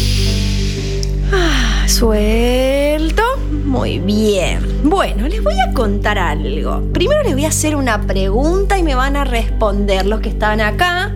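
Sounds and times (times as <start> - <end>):
long loud breathy exhale: 0.0 - 2.0
steady tonal hum or music bed: 0.0 - 5.6
speech: 2.0 - 11.1.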